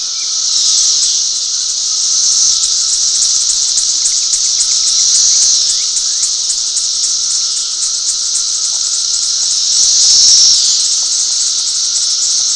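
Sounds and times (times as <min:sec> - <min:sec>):
periodical cicadas: 0:00.0 - 0:12.5.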